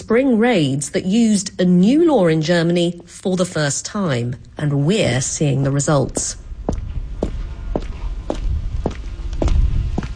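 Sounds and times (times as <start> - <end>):
speech: 0.1 - 6.4
footsteps on a hard floor in a large warehouse: 6.2 - 10.1.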